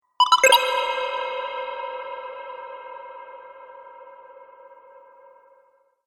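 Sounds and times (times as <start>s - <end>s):
video game cavern token sound effects: 0.2s - 1.0s.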